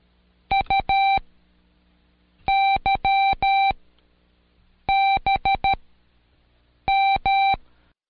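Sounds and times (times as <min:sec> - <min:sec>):
Morse code letters as short and long electronic beeps: 0:00.5 - 0:01.2, 0:02.5 - 0:03.8, 0:04.9 - 0:05.8, 0:06.9 - 0:07.6.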